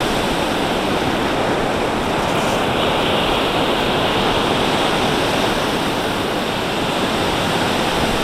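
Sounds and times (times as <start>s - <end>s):
intense waves: 0.0s - 8.2s.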